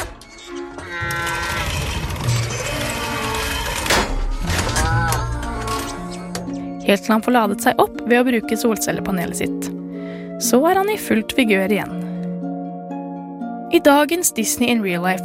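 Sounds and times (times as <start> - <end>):
small robot whirring and whining with electronic tones: 0.2 - 6.6
speech: 6.9 - 9.7, 10.4 - 12.1, 13.7 - 15.2.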